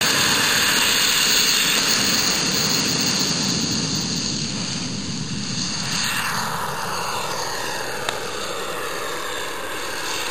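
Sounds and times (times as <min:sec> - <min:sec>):
airplane taking off: 0:00.0 - 0:10.2.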